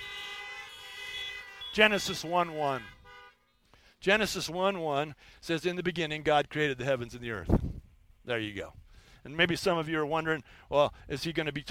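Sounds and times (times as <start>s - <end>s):
car horns honking: 0.0s - 3.7s
speech: 1.8s - 3.0s, 4.0s - 11.6s.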